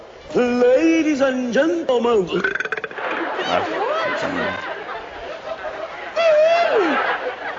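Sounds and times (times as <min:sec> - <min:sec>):
people chattering and snickering: 0:00.0 - 0:07.5
speech: 0:00.3 - 0:02.6
loud drawn-out burp: 0:02.3 - 0:03.0
laughter: 0:02.9 - 0:07.5.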